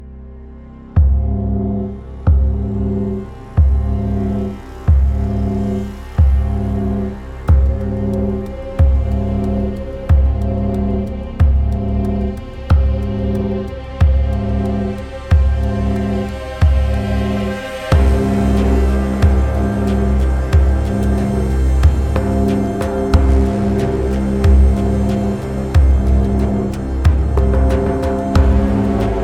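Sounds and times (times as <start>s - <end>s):
hybrid groove: 1.0s - 29.2s
ritual gong drum: 17.9s - 29.2s.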